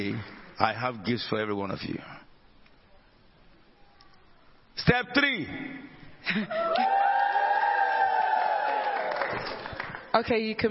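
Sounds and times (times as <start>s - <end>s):
speech: 0.0s - 2.2s, 4.8s - 7.0s, 9.3s - 10.7s
loud sustained high-pitched whoop: 6.5s - 9.3s
crowd cheering and applauding: 6.6s - 10.1s.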